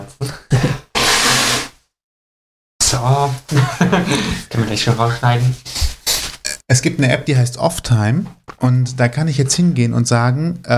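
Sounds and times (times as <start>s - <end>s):
person blowing nose: 0.7s - 1.8s, 5.7s - 6.4s
speech: 3.0s - 5.9s, 6.7s - 10.7s
laughter: 3.5s - 4.6s.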